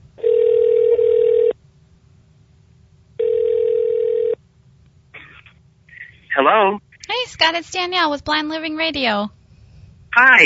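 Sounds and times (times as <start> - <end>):
telephone line tone as a call is placed: 0.2 - 1.6, 3.2 - 4.4
speech: 7.4 - 9.4, 10.2 - 10.4.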